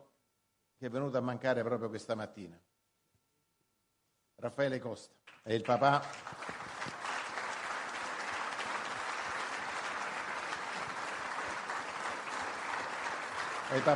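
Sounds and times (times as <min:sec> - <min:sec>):
speech: 0:00.8 - 0:02.7, 0:04.4 - 0:06.5, 0:13.7 - 0:13.9
large audience applauding: 0:05.5 - 0:13.9.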